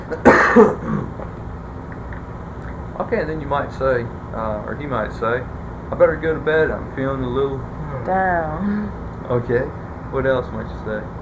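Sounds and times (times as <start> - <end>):
speech: 0.1 - 0.9, 3.1 - 11.2
person coughing: 0.1 - 1.2.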